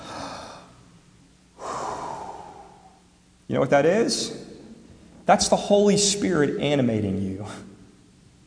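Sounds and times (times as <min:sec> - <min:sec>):
deep breathing: 0:00.0 - 0:00.9, 0:01.5 - 0:03.2
speech: 0:03.5 - 0:04.5, 0:05.3 - 0:07.7.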